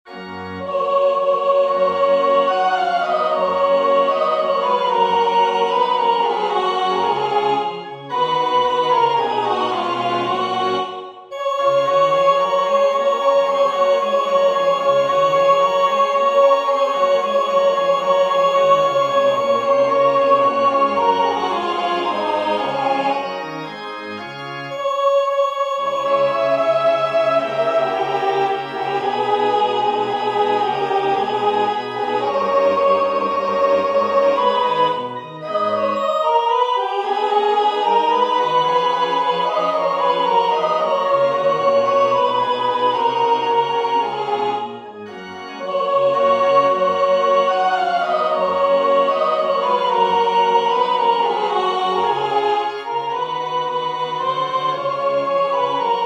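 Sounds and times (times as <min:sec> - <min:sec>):
soprano singing: 0:00.1 - 0:23.4, 0:24.7 - 0:56.0.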